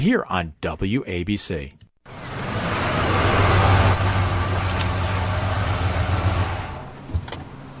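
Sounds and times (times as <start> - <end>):
speech: 0.0 - 1.8
truck engine idling: 2.1 - 7.7.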